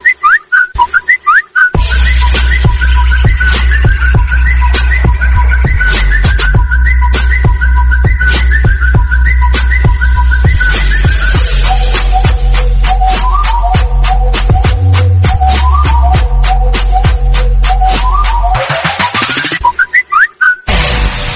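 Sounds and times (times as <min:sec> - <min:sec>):
Samsung flute ringtone remix: 0:00.0 - 0:21.2.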